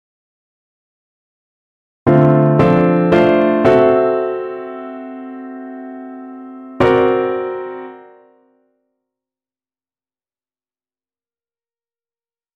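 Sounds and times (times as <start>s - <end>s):
drop 2 chords on piano: 2.1s - 8.6s.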